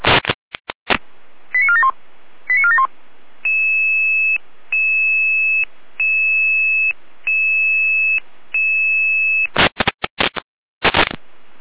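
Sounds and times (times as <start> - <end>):
two-tone beeps: 1.6 - 1.9
fire brigade dispatch alarm tones: 3.5 - 9.5
loud bursts of static: 9.5 - 11.2.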